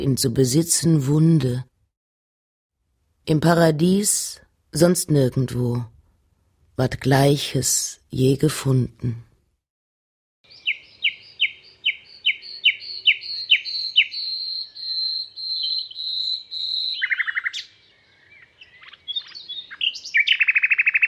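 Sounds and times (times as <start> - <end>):
speech: 0.0 - 1.7, 3.2 - 6.0, 6.8 - 9.3
birdsong with whistled notes, chirps and buzzing trill: 10.5 - 21.0.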